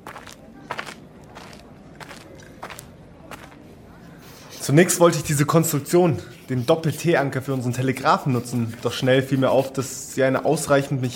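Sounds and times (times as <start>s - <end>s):
soft scuffing footsteps approaching at an unhurried pace: 0.0s - 3.8s
speech: 4.7s - 11.1s.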